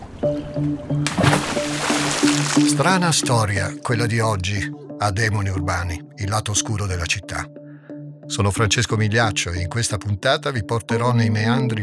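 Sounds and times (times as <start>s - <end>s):
speech: 0.2s - 7.6s, 8.3s - 11.8s
heavy suitcase sliding off a boat into water: 1.1s - 3.0s.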